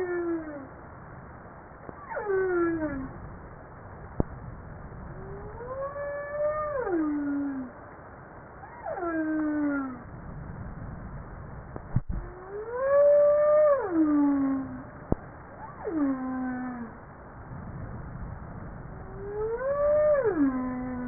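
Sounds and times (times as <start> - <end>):
humpback whale moaning harmonic cries: 2.0 - 3.2, 5.2 - 7.8, 8.6 - 10.1, 12.2 - 15.0, 15.6 - 17.0, 19.0 - 21.0.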